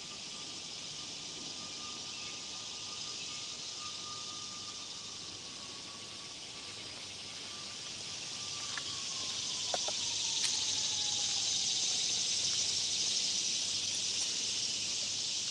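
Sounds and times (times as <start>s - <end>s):
cicadas buzzing among trees under a leafy canopy after a storm: 0.0s - 15.4s
faint chirps and clicks: 8.6s - 10.8s.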